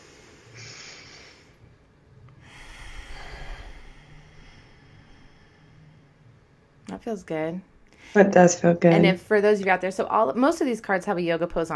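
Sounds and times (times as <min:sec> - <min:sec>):
slow deep breath during a breathing exercise: 0:00.0 - 0:06.8
speech: 0:06.9 - 0:11.7.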